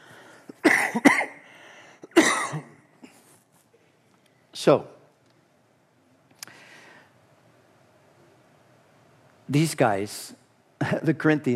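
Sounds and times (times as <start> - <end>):
person coughing at a church pulpit: 0.5 - 1.4, 2.0 - 3.3
speech: 0.9 - 1.1, 4.6 - 5.0, 9.5 - 11.5
short breaths: 1.4 - 2.1, 6.4 - 7.2.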